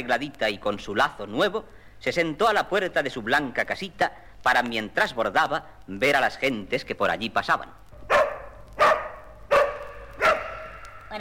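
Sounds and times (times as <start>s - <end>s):
speech: 0.0s - 7.8s
dog barking: 8.1s - 10.8s.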